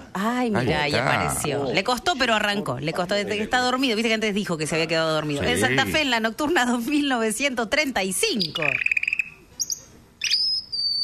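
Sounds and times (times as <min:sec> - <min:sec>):
speech: 0:00.2 - 0:08.9
bird chirping sound effect: 0:08.3 - 0:11.0.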